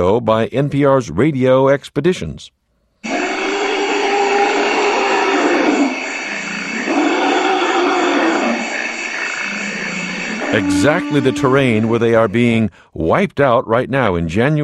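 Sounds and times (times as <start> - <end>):
speech: 0.0 - 2.6, 10.5 - 14.6
forest elephants in Central Africa calling in low rumbling roars: 3.0 - 12.0
steady wash of broadband noise: 3.0 - 12.7.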